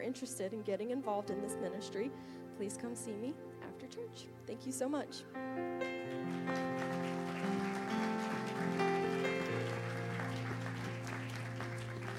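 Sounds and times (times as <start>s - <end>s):
speech: 0.0s - 6.0s
sustained organ chords: 5.4s - 12.1s
audience clapping: 6.0s - 12.1s.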